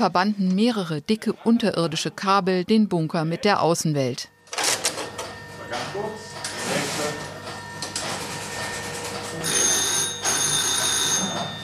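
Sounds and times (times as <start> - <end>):
speech: 0.0 - 4.3
old rotary telephone bell ringing: 4.6 - 11.6.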